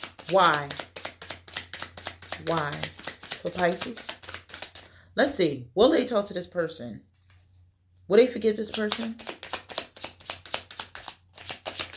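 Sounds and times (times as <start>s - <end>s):
tarot cards shuffled by hand: 0.0s - 4.9s, 8.6s - 11.9s
speech: 0.3s - 0.8s, 2.4s - 4.1s, 5.2s - 7.1s, 8.1s - 9.3s.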